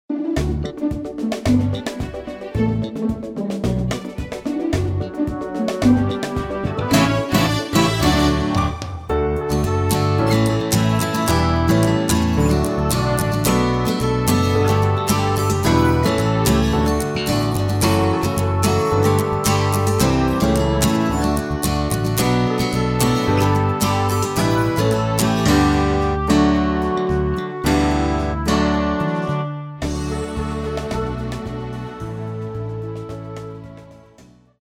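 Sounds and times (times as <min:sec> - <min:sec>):
traditional music: 0:00.1 - 0:34.2.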